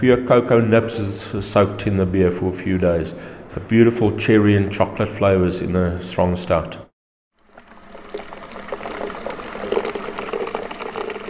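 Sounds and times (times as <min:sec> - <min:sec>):
speech: 0:00.0 - 0:06.8
worker pouring water into a brewing vessel at a brewery in the Magaliesberg Mountains: 0:07.4 - 0:11.2.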